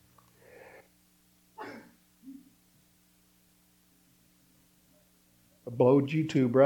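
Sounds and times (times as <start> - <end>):
person sneezing: 1.6 - 2.5
speech: 5.7 - 6.6.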